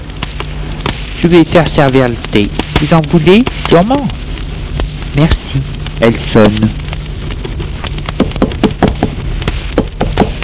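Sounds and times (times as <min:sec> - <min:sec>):
low rumble: 0:00.0 - 0:10.4
speech: 0:01.2 - 0:04.2, 0:05.2 - 0:06.8
maid knocking on a door: 0:08.2 - 0:09.2.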